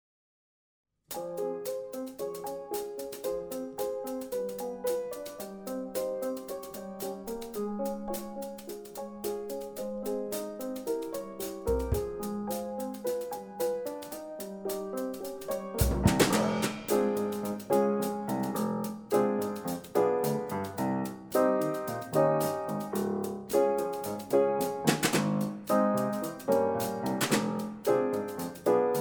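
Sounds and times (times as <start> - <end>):
drum piano: 1.1 - 28.9.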